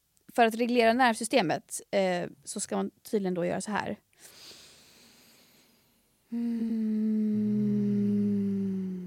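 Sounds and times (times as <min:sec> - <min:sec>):
speech: 0:00.4 - 0:04.4, 0:06.3 - 0:07.6
soft airy inhale: 0:04.2 - 0:09.0
person humming on exhale: 0:06.3 - 0:09.0.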